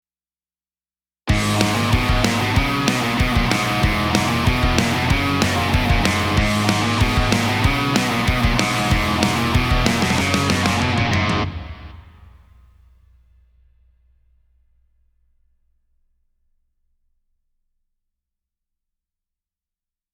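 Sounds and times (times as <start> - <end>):
drums: 1.3 - 16.0.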